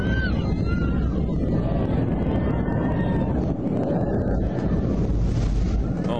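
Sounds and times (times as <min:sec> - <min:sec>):
faint whining tones: 0:00.0 - 0:06.1
plane going down heard from inside: 0:00.0 - 0:06.1
voices: 0:05.8 - 0:06.1.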